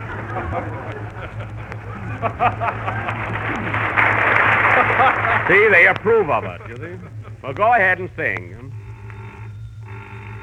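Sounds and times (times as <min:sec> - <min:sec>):
laughter: 0:00.0 - 0:08.8
speech: 0:00.4 - 0:03.1, 0:05.0 - 0:08.6
old-fashioned telephone bell ringing: 0:08.8 - 0:10.4.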